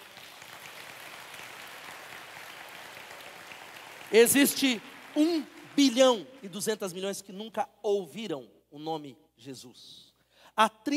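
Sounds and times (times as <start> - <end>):
crowd applauding: 0.0 - 7.0
speech: 4.1 - 10.9.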